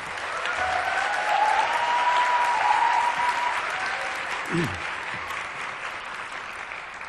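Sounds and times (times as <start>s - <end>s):
large church audience applauding a guest pastor: 0.0s - 7.0s
faint voice: 4.4s - 4.9s.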